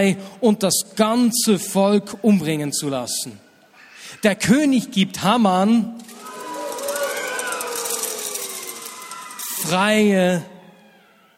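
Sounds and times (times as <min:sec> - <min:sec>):
speech: 0:00.0 - 0:03.5, 0:04.1 - 0:06.1, 0:09.7 - 0:10.5
rattling noisemakers: 0:06.0 - 0:10.5
crowd clamor and shouts: 0:06.0 - 0:11.3
shrill tones: 0:06.0 - 0:11.3.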